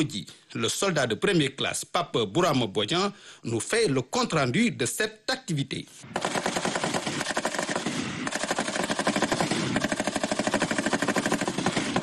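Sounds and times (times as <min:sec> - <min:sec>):
speech: 0:00.0 - 0:06.6
rapid automatic gunfire during an army live-fire shooting exercise: 0:06.1 - 0:12.0.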